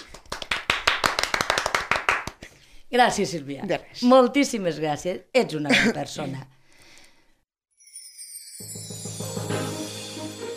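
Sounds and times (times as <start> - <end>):
brisk applause from a small group: 0.0 - 2.4
speech: 2.9 - 6.6.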